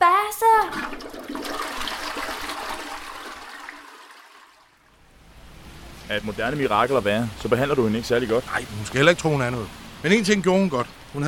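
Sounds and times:
toilet flushing: 0:00.4 - 0:04.9
speech: 0:06.1 - 0:11.2.

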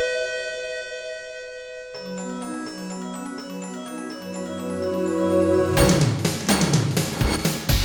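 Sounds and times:
bright chiming bell: 0:00.1 - 0:07.7
busier layered jingle: 0:01.6 - 0:07.7.

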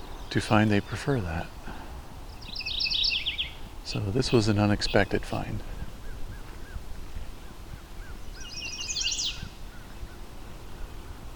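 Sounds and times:
another bird chirping: 0:00.0 - 0:06.8, 0:07.4 - 0:11.3
chestnut-sided warbler singing high in a tree in a disturbed area: 0:00.0 - 0:11.3
steady low outdoor rumble: 0:00.0 - 0:11.3
speech: 0:00.3 - 0:01.6, 0:03.9 - 0:05.7.

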